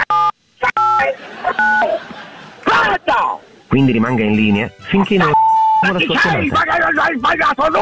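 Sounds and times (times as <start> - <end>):
telephone keypad tones from pressing number keys: 0.1 - 1.0, 1.6 - 1.8, 5.3 - 6.0
speech: 1.0 - 2.1, 3.1 - 7.8
laughter: 1.0 - 3.3, 5.0 - 6.7.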